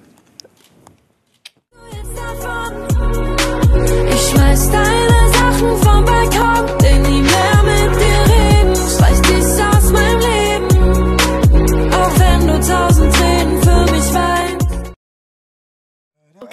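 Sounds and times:
upbeat German pop song with thumping beat: 1.8 - 15.0.

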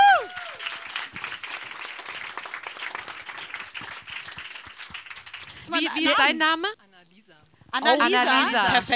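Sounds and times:
crowd falling whoop or cheer: 0.0 - 1.2
audience applause: 0.0 - 6.0
speech: 5.7 - 6.9, 7.7 - 8.9.

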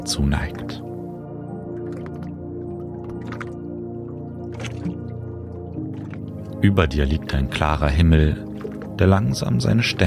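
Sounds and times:
speech: 0.0 - 0.8, 6.6 - 10.0
gentle splashing of dark canal water heard from a boat: 1.4 - 7.3, 8.2 - 9.6
soft water drips: 1.5 - 9.6.

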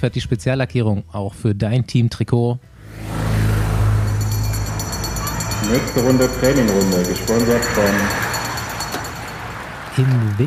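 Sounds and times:
speech: 0.0 - 3.2, 5.6 - 8.3, 10.0 - 10.4
car engine roaring while accelerating: 2.6 - 10.0.

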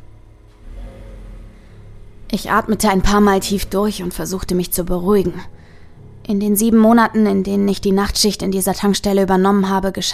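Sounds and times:
Buick engine starting and revving at a gas station at night: 0.2 - 4.9
speech: 2.3 - 5.6, 6.3 - 10.1.

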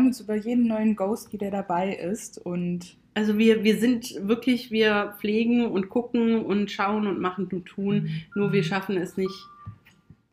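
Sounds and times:
speech: 0.1 - 9.5
mobile phone steady electronic tone: 7.9 - 9.8.

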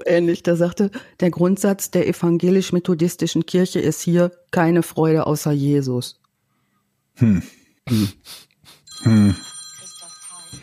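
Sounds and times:
speech: 0.1 - 6.2, 7.2 - 9.5
short vocal bursts from a person: 7.2 - 8.4, 9.0 - 9.5
telephone ringing with a high electronic trill: 8.9 - 10.6.

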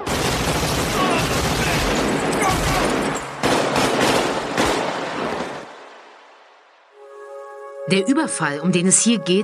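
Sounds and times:
rapid bursts of overlapping gunfire in a shootout: 0.0 - 6.2
speech: 7.9 - 9.4.

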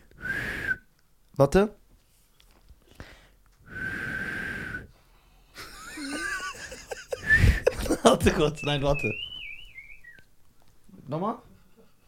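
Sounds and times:
speech: 1.4 - 1.8, 8.2 - 9.3, 11.1 - 11.5
person attempting to whistle: 3.7 - 4.9, 7.2 - 10.2
person laughing: 5.6 - 8.6, 11.4 - 12.0.

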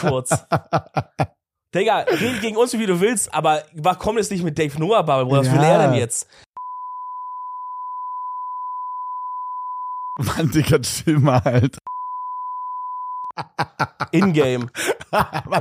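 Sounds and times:
person talking energetically: 0.0 - 1.0, 1.8 - 6.3, 13.8 - 15.5
laughter: 0.0 - 1.3, 2.0 - 2.6, 11.1 - 11.8, 13.3 - 15.5
speech: 0.0 - 6.5, 10.2 - 11.9, 13.4 - 15.5
high-pitched censor bleep tone: 6.6 - 10.2, 11.9 - 13.3.

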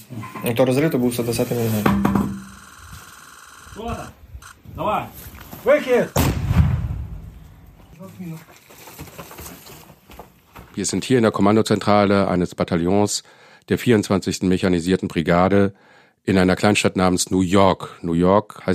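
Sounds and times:
speech: 0.1 - 2.1, 4.8 - 6.3, 8.0 - 8.6, 10.8 - 18.7
heavy 120mm mortar blast: 6.2 - 7.5.

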